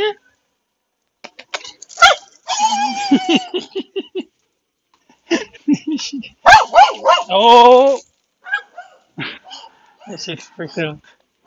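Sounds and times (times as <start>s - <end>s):
small dog yipping and barking: 2.0s - 3.1s, 6.5s - 7.3s, 8.4s - 9.7s
laughter: 2.9s - 4.3s, 5.3s - 6.4s
speech: 7.3s - 8.1s, 10.1s - 11.2s.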